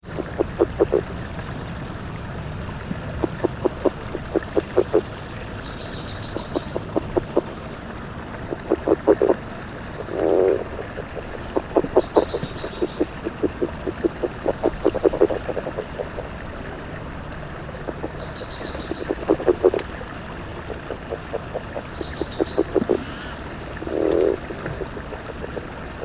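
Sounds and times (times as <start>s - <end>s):
Rana draytonii calling: 0.2s - 1.3s, 3.2s - 7.8s, 8.4s - 16.3s, 17.5s - 26.0s.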